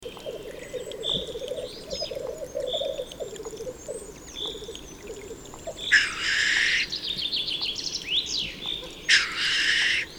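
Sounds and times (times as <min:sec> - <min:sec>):
black grouse calling: 0:00.2 - 0:07.0, 0:08.6 - 0:10.1.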